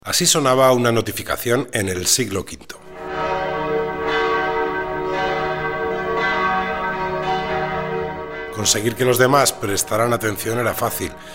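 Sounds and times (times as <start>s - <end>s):
speech: 0.1s - 2.8s, 8.6s - 11.3s
church bell ringing: 2.8s - 11.3s.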